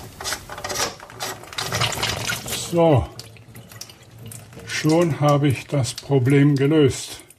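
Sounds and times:
threaded upper part of a fitting with a seal being unscrewed: 0.1 - 2.2
speech: 2.7 - 3.2, 4.8 - 7.2.

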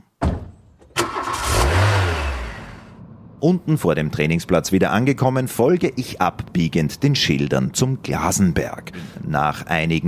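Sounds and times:
car engine cranking and catching: 0.8 - 3.4
car engine revving while driven through countryside: 1.2 - 2.9
speech: 3.4 - 10.0.

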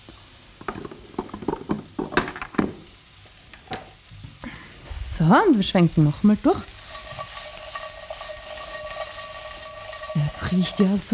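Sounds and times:
bay leaf sizzling in a frying pan: 0.0 - 11.1
speech: 5.2 - 6.7, 10.5 - 11.1.

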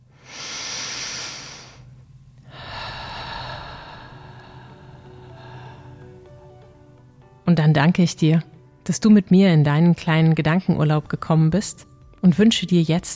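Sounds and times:
long deep breath during guided relaxation: 0.0 - 6.4
speech: 7.6 - 13.1.

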